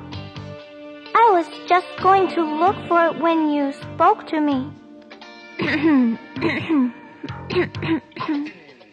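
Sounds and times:
speech: 1.4s - 4.8s, 5.6s - 8.6s
person clearing throat: 5.6s - 8.7s
person coughing theatrically: 5.6s - 8.7s.

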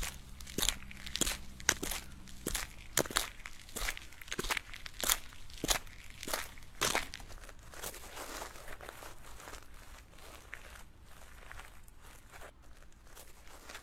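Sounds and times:
high heel footsteps clicking outdoors: 0.0s - 7.4s
low hum: 0.0s - 7.6s
gritty crunching footsteps: 0.0s - 13.8s.

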